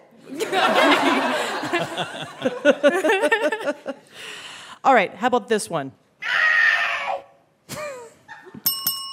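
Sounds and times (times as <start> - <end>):
laughter: 0.2 - 4.1
speech: 1.8 - 3.5, 4.9 - 6.0
handheld electronic game game-over synthetic scream: 6.2 - 7.4.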